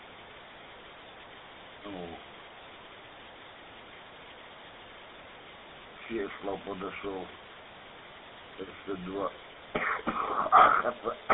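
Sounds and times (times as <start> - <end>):
speech: 1.8 - 2.3, 6.1 - 7.5, 8.6 - 11.3
person coughing through a phone or radio line: 9.8 - 11.3.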